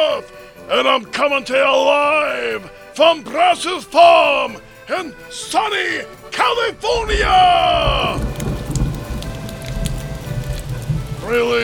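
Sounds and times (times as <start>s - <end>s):
speech: 0.0s - 8.4s, 11.3s - 11.6s
steady rain falling on a farm in California: 6.9s - 11.6s.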